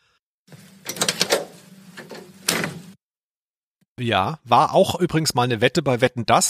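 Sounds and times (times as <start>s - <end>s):
mechanical clunks and latch clicks: 0.8s - 2.9s
speech: 4.0s - 6.4s.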